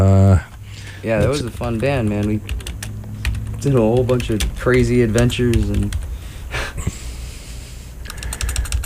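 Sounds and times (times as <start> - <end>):
low hum: 0.0 - 8.8
speech: 1.0 - 2.6, 3.6 - 6.0
typing on a computer keyboard: 1.4 - 6.1, 8.0 - 8.8.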